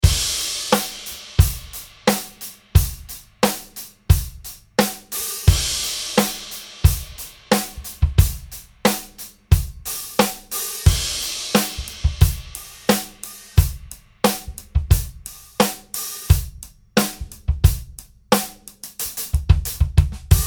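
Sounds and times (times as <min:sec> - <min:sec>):
extra thin hammered crash cymbal: 0:00.0 - 0:03.7, 0:05.2 - 0:07.8, 0:09.9 - 0:14.1
16 inch hi-hats: 0:00.0 - 0:20.4.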